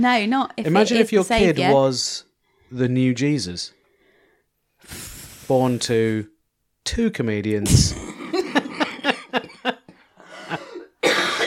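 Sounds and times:
speech: 0.0s - 3.8s, 4.8s - 8.0s
laughter: 7.9s - 10.8s
woman coughing: 10.5s - 11.4s.

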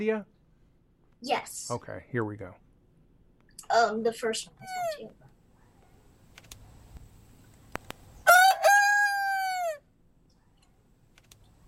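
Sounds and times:
speech: 0.0s - 0.4s, 1.2s - 2.6s, 3.6s - 5.3s
rooster crowing: 8.2s - 9.9s.

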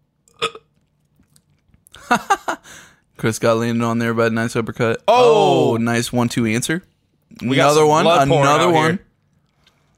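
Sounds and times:
people burping while watching a fighting game: 0.3s - 0.7s
speech: 2.1s - 2.5s, 3.2s - 9.0s.

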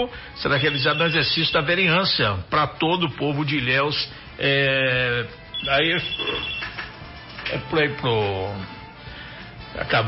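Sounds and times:
speech: 0.0s - 6.7s, 7.5s - 8.8s, 9.7s - 10.0s
telephone ringing with a melodic ringtone: 0.4s - 2.0s, 5.5s - 7.2s.

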